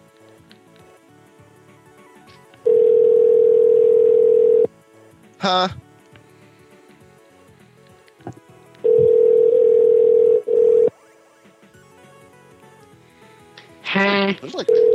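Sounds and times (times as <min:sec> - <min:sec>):
telephone ringing tone of an outgoing call: 0:02.7 - 0:04.7, 0:08.8 - 0:10.9, 0:14.7 - 0:14.9
speech: 0:05.4 - 0:05.8.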